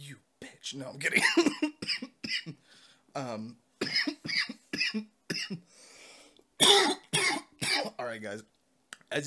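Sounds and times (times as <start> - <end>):
speech: 0.1 - 2.6, 3.2 - 3.6, 4.9 - 5.6, 8.2 - 9.2
person who has just smoked coughing harshly: 1.1 - 2.6, 3.8 - 5.6, 6.6 - 8.0.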